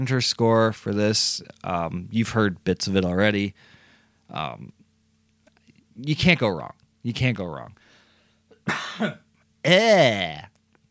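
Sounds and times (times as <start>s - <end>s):
speech: 0.0s - 4.8s, 6.0s - 7.8s, 8.7s - 10.5s
person with a dry throat coughing: 8.6s - 9.3s.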